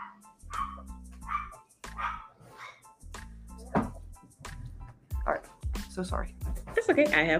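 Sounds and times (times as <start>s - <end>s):
dogs barking: 0.0s - 3.0s
speech: 6.0s - 7.3s.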